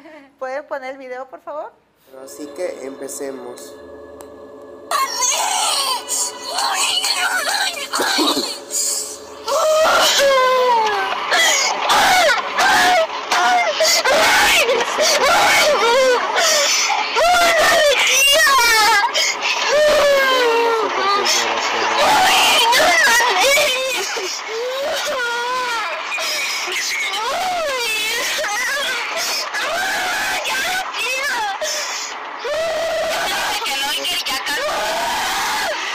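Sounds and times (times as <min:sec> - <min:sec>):
speech: 0:00.4 - 0:04.3, 0:06.5 - 0:08.6
adolescent crying and screaming in tantrum: 0:04.9 - 0:21.3, 0:22.0 - 0:31.7, 0:32.4 - 0:33.9, 0:34.5 - 0:35.8
laughter: 0:07.9 - 0:09.0.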